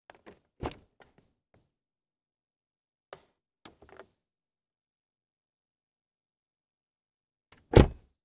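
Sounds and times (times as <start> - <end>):
Subaru car door: 7.8 - 8.0.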